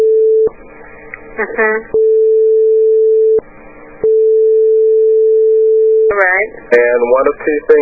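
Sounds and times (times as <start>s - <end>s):
telephone line tone from a regular phone picked up to dial: 0.0s - 0.5s, 2.0s - 3.4s, 4.0s - 6.2s
speech: 1.4s - 2.0s, 6.4s - 7.7s.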